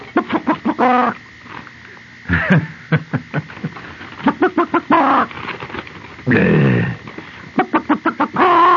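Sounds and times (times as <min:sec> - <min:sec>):
chicken clucking and squawking: 0:00.1 - 0:01.2, 0:04.2 - 0:05.4, 0:07.6 - 0:08.7
laughter: 0:02.3 - 0:05.0.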